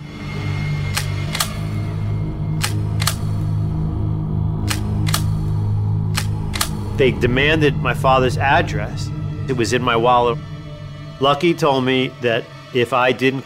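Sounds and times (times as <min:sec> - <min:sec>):
steady low hum: 0:00.0 - 0:13.4
guns being cocked and uncocked: 0:01.0 - 0:01.6, 0:02.6 - 0:03.4, 0:04.7 - 0:05.4, 0:06.2 - 0:06.8
speech: 0:07.0 - 0:10.5, 0:11.2 - 0:13.4.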